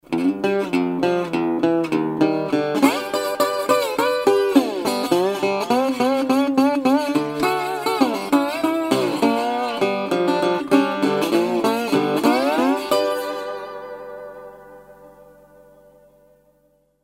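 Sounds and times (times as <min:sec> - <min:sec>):
Delta resonator guitar: 0:00.0 - 0:17.0.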